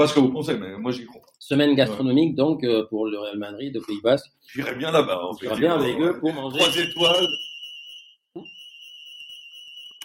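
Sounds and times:
speech: 0.0s - 7.5s
building alarm blaring a high-pitched tone: 6.5s - 10.0s.

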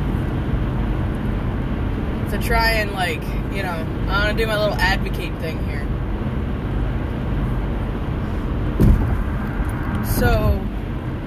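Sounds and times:
car driving on a highway in Ohio: 0.0s - 11.2s
speech: 2.3s - 5.9s, 10.1s - 10.7s
loud thump: 8.7s - 10.4s.

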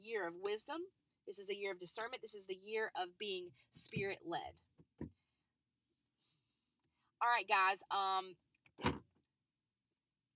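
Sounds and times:
speech: 0.0s - 4.7s, 7.2s - 8.9s
car door being opened: 8.8s - 9.0s.

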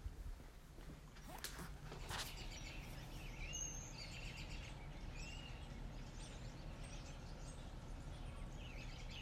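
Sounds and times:
steady outdoor rumble: 0.0s - 9.2s
birds chirping and singing outdoors: 1.2s - 9.2s.

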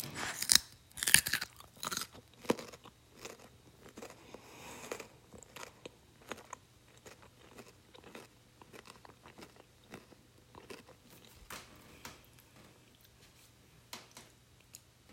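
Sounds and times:
person biting and chewing crisp food: 0.0s - 11.4s.

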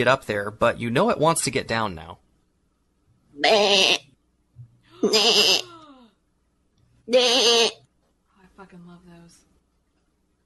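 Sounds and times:
speech: 0.0s - 2.2s, 3.4s - 4.1s, 5.0s - 5.8s, 7.1s - 7.8s
sheep-like creature bleating in distress: 3.4s - 4.0s, 5.0s - 5.8s, 7.1s - 7.8s.

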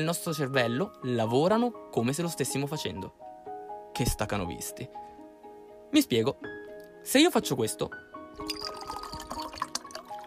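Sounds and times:
speech: 0.0s - 3.3s, 4.0s - 5.1s, 5.9s - 8.5s
water pouring into a glass: 8.4s - 10.2s.

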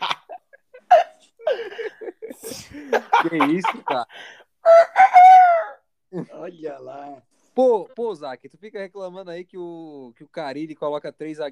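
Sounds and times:
laughter: 0.0s - 5.2s
speech: 3.2s - 4.4s, 6.1s - 11.5s
rooster crowing: 4.6s - 5.8s.

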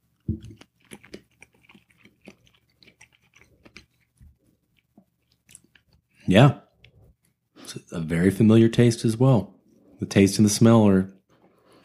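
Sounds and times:
wet mouth sounds: 0.0s - 6.2s
chewing a bite of food made with bell peppers and corn on rice: 0.0s - 7.4s
speech: 6.3s - 6.6s, 7.9s - 11.2s.

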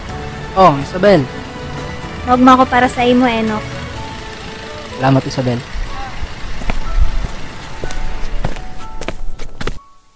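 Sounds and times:
faint tonal traffic noise: 0.0s - 9.3s
steady outdoor hum: 0.0s - 9.8s
speech: 0.6s - 1.4s, 2.3s - 3.7s, 5.0s - 5.7s
woman's footsteps scuffing along the side of a road: 5.8s - 9.9s.

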